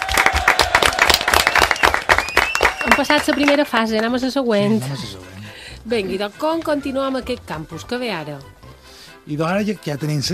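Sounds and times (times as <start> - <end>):
loud applause from a group: 0.0 - 3.8
speech: 2.9 - 8.5, 9.2 - 10.3.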